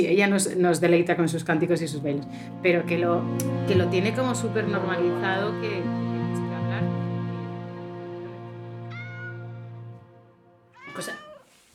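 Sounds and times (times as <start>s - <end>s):
speech: 0.0s - 6.4s
cat meowing: 8.9s - 9.4s, 10.8s - 11.6s.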